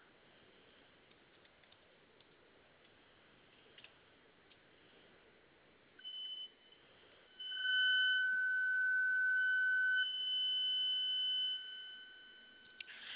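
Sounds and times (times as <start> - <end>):
store security alarm blaring with a piercing electronic tone: 6.0 - 13.0.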